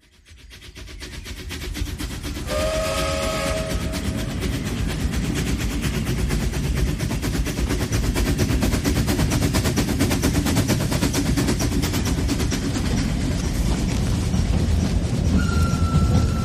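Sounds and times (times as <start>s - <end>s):
train rumbling and clattering on rails: 0.0s - 16.4s
train whistle: 2.4s - 4.4s, 15.4s - 16.4s.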